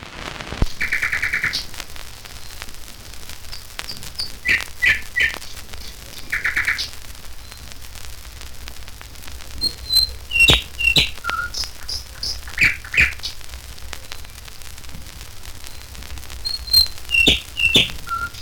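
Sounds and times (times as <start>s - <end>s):
steady background hiss: 0.0s - 18.4s
nightingale giving bursts of rapid repeated notes: 0.8s - 1.7s, 3.4s - 7.7s, 9.6s - 13.4s, 15.6s - 18.4s.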